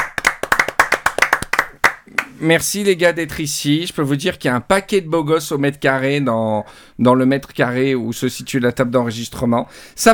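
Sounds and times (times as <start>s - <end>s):
small group hand clapping: 0.0s - 2.4s
speech: 2.4s - 10.1s.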